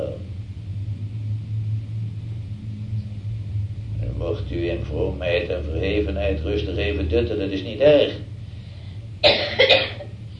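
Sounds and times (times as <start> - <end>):
low steady room hum: 0.0 - 10.3
speech: 4.3 - 8.3
audience member coughing: 9.2 - 10.2.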